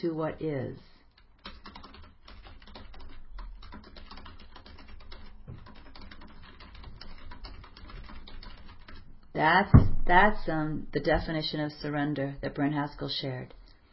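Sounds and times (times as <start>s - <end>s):
speech: 0.0s - 0.9s, 9.4s - 13.6s
typing on a computer keyboard: 1.1s - 9.0s.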